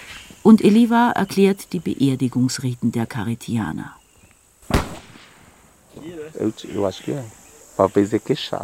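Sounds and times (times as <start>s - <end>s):
steady high insect drone: 0.0s - 8.6s
speech: 0.4s - 4.0s, 6.0s - 8.6s
hunting rifle gunshot: 4.6s - 5.6s.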